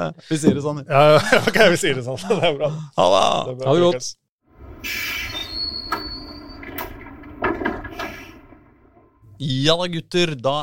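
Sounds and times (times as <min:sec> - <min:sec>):
speech: 0:00.0 - 0:04.2, 0:04.8 - 0:05.2, 0:09.4 - 0:10.6
laughter: 0:01.0 - 0:03.0
tram rumbling along rails: 0:04.5 - 0:09.5
thin metallic squeal of tram: 0:04.8 - 0:07.2
sharp clanks and knocks of passing tram: 0:05.8 - 0:09.3.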